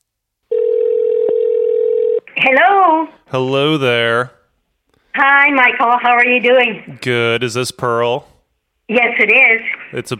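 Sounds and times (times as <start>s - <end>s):
telephone line tone: 0.5s - 2.3s
speech: 2.4s - 4.4s, 5.2s - 8.3s, 8.9s - 10.1s.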